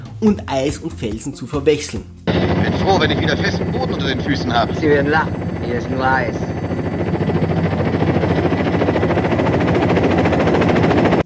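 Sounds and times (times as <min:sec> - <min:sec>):
speech: 0:00.2 - 0:06.6
helicopter flying: 0:02.3 - 0:11.2.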